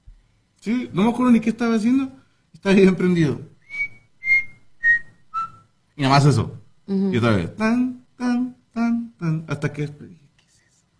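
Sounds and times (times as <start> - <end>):
speech: 0.6 - 3.5, 6.0 - 10.2
person whistling softly: 3.6 - 5.7.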